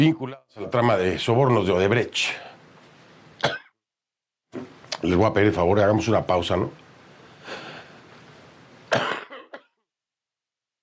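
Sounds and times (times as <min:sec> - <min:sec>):
speech: 0:00.0 - 0:02.5, 0:04.5 - 0:06.8, 0:08.9 - 0:09.2
person coughing: 0:03.4 - 0:03.7, 0:08.9 - 0:09.8.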